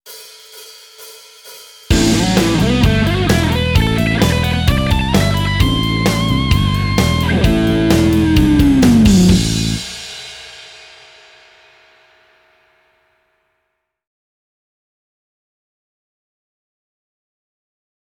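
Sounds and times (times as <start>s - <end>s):
fast musical lick: 1.9s - 10.3s.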